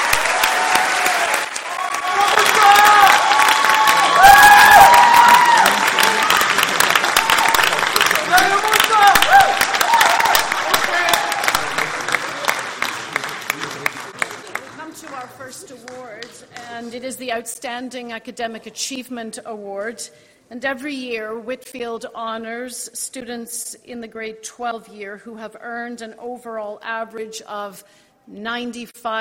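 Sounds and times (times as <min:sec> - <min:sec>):
audience cheers and whoops: 0:00.0 - 0:06.5, 0:07.1 - 0:07.9, 0:09.0 - 0:11.6
large audience clapping for students: 0:00.0 - 0:16.9
speech: 0:17.4 - 0:29.2.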